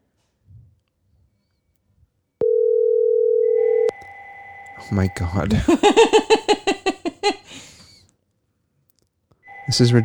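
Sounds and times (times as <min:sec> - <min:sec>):
telephone ringing with an electronic tone: 0:02.4 - 0:05.4, 0:09.5 - 0:10.0
speech: 0:04.8 - 0:06.8, 0:09.7 - 0:10.0
laughter: 0:05.5 - 0:07.6.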